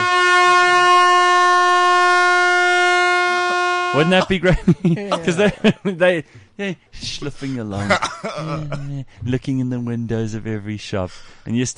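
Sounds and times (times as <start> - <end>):
air horn blast: 0.0 - 4.3
speech: 3.9 - 11.7
laughter: 4.0 - 6.2, 7.0 - 9.0.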